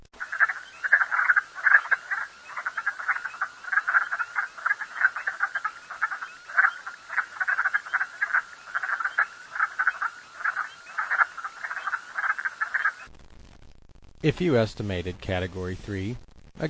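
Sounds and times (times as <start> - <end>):
dense chorus of wood frogs calling in Alaska: 0.2 - 13.1
speech: 14.2 - 16.6.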